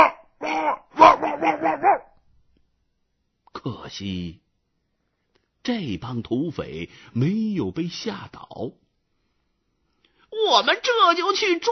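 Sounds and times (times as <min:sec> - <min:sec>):
dog barking and growling loudly to scare off intruders: 0:00.0 - 0:02.2
speech: 0:03.6 - 0:04.4, 0:05.6 - 0:08.8, 0:10.5 - 0:11.7.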